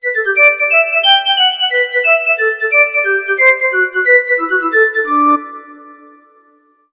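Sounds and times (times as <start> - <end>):
synth flute: 0.0 - 6.8.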